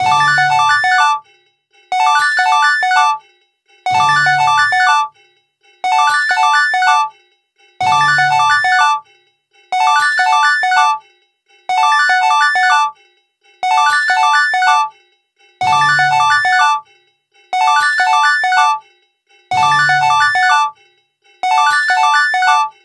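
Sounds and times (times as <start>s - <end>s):
Sony Ericsson W995 mobile phone ringtone: 0.0s - 1.3s, 1.9s - 3.3s, 3.9s - 5.2s, 5.8s - 7.2s, 7.8s - 9.1s, 9.7s - 11.1s, 11.7s - 13.0s, 13.6s - 15.0s, 15.6s - 16.9s, 17.6s - 18.8s, 19.5s - 20.8s, 21.4s - 22.8s.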